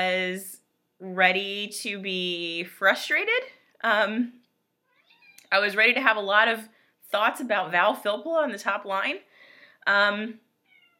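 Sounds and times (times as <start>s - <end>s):
speech: 0.0s - 4.4s, 5.5s - 10.4s
domestic cat meowing: 4.9s - 5.5s, 10.6s - 10.9s.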